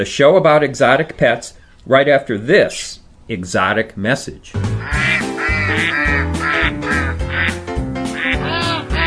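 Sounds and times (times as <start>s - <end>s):
speech: 0.0s - 6.7s
flock of ducks quacking: 4.7s - 9.0s.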